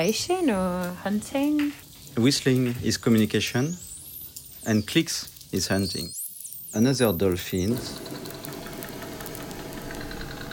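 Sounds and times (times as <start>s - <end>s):
speech: 0.0s - 3.9s, 4.6s - 8.2s
boat engine rumble: 7.6s - 10.5s.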